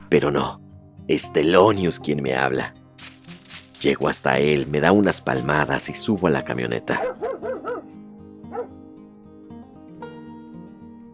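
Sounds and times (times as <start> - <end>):
speech: 0.1 - 3.1, 3.8 - 7.3
sustained music: 1.2 - 9.7
dog barking at a rabbit in the snow: 7.0 - 7.9, 8.5 - 8.8.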